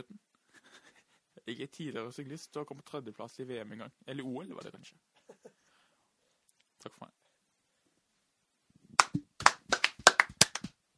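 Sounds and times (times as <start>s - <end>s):
speech: 1.5s - 5.1s
hands clapping against the microphone: 9.0s - 10.9s.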